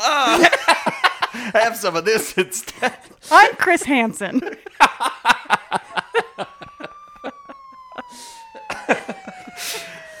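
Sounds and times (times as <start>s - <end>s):
short rhythmic bursts of laughter: 0.0s - 1.6s, 4.4s - 10.1s
speech: 1.5s - 5.8s
police siren wailing: 4.8s - 10.1s.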